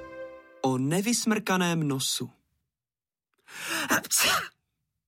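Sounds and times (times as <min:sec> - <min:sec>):
speech: 0:00.7 - 0:02.4, 0:03.5 - 0:04.6
person sneezing: 0:03.6 - 0:04.6.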